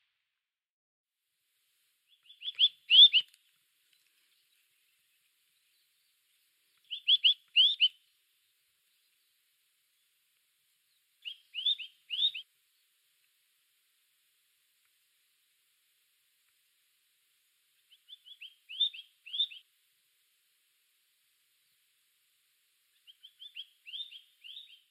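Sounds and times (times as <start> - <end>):
bird singing: 2.1 - 10.2, 10.8 - 13.0, 17.7 - 19.7, 22.9 - 24.8.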